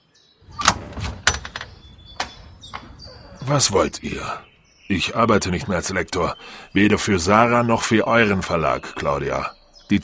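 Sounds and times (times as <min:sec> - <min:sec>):
door knock-like clatter and rattles: 0:00.4 - 0:04.0
door latch click and clunk: 0:00.5 - 0:03.1
speech: 0:03.5 - 0:10.0.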